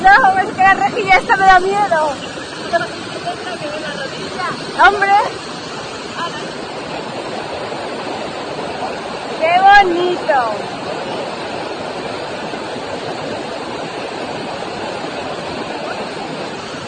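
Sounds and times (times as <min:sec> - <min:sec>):
rushing waterfalls among snow-covered mountains: 0:00.0 - 0:16.8
speech: 0:00.7 - 0:05.5, 0:09.4 - 0:11.0.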